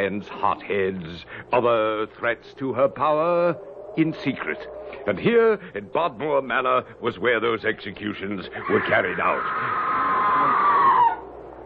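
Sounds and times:
speech: 0.0 - 10.0
distant high wavering human scream: 8.6 - 11.3.

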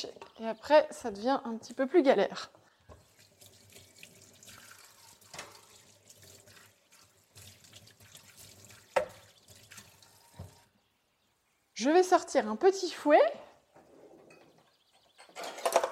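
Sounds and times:
speech: 0.0 - 2.6, 11.8 - 13.4
running tap water pouring into a sink: 2.8 - 10.7.

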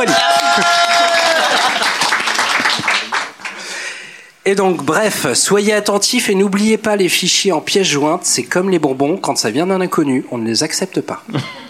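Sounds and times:
speech: 0.0 - 1.2, 4.4 - 11.6
person whooping: 0.0 - 2.0
laughter: 0.0 - 3.6, 11.3 - 11.6
crowd clapping in applause: 0.0 - 3.8.

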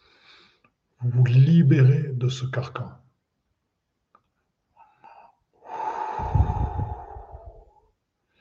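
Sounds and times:
speech: 1.0 - 3.0
deep inhaling breath during a guided breathing exercise: 5.0 - 8.4.

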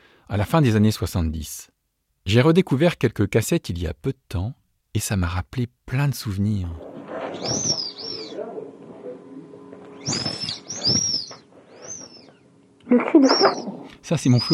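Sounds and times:
speech: 0.3 - 7.8, 10.0 - 10.3, 12.9 - 14.5
inflatable dog-head float squeaking when its neck is pressed: 7.1 - 8.4, 9.9 - 12.4, 13.0 - 14.5.

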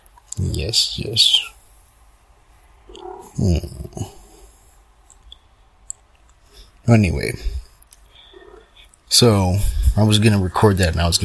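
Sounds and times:
speech: 0.4 - 1.5, 3.4 - 4.2, 6.9 - 7.6, 9.1 - 11.2
cat meowing: 2.9 - 3.4
small cat vocal sound: 2.9 - 4.5.

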